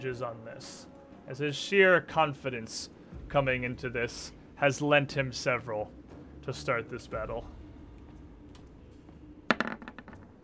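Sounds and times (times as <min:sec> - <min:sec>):
speech: 0:00.0 - 0:07.6
dice clattering onto a hard tabletop: 0:09.5 - 0:10.4.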